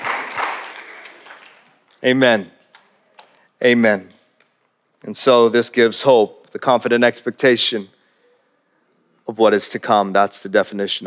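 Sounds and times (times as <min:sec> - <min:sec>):
audience clapping: 0:00.0 - 0:02.0
speech: 0:02.0 - 0:02.6, 0:03.6 - 0:04.1, 0:05.0 - 0:08.0, 0:09.3 - 0:11.0.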